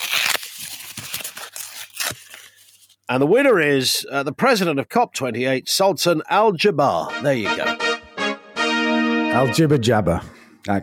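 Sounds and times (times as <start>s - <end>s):
paper envelope being torn open: 0.0s - 3.0s
speech: 3.1s - 8.0s, 9.4s - 10.8s.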